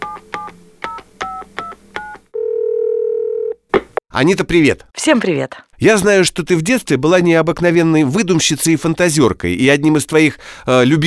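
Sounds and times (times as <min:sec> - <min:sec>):
touch-tone telephone dialing beeps: 0:00.0 - 0:02.3
steady telephone ringing tone: 0:00.0 - 0:03.6
speech: 0:04.2 - 0:11.0.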